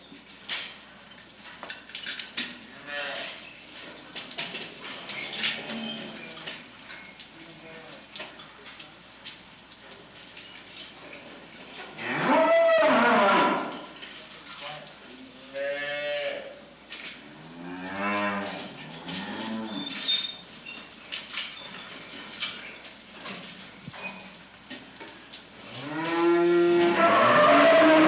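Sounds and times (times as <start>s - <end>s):
cows lowing: 12.0s - 13.8s, 17.3s - 20.0s, 25.7s - 28.0s.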